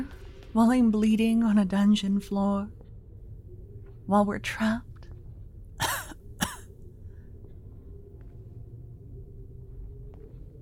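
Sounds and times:
speech: 0.5s - 2.8s, 4.1s - 4.9s
person coughing harshly: 5.8s - 6.7s.

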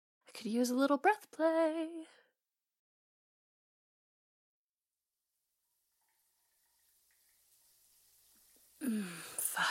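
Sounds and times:
speech: 0.4s - 2.2s, 8.8s - 9.6s
shower water running: 6.4s - 9.6s.

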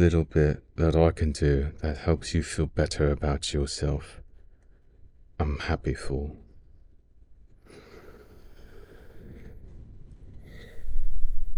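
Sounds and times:
speech: 0.0s - 4.2s, 5.4s - 6.4s
deep slow breathing: 6.5s - 11.5s.

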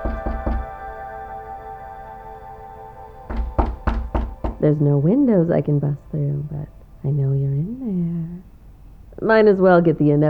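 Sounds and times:
sharp knocks on a wooden motel room door: 0.0s - 0.8s, 3.3s - 4.6s
low steady hum: 0.0s - 10.2s
speech: 4.6s - 8.5s, 9.2s - 10.2s.

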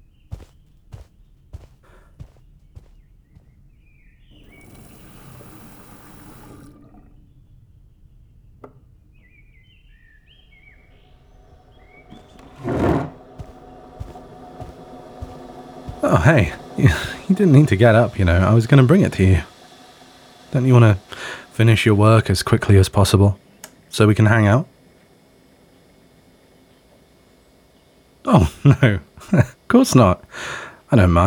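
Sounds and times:
light footsteps: 0.0s - 3.8s, 11.6s - 18.8s
birds chirping: 0.0s - 23.2s
water running into a kettle: 4.4s - 7.2s, 12.0s - 23.1s
speech: 16.1s - 19.5s, 20.5s - 24.7s, 28.3s - 31.2s.

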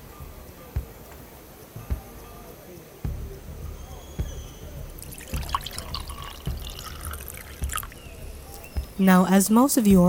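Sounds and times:
tea with fruit juice poured into a cup during a wedding ceremony: 5.0s - 8.6s
speech: 9.0s - 10.0s.

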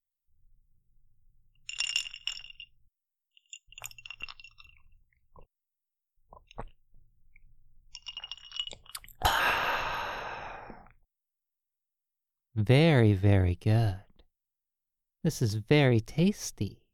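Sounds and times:
light clinks of glass: 1.6s - 2.8s, 3.4s - 5.2s, 7.9s - 9.2s
quiet sips from a glass: 3.7s - 5.5s, 8.0s - 11.0s
loud satisfied exhale: 9.2s - 10.9s
speech: 12.6s - 14.0s, 15.2s - 16.8s.

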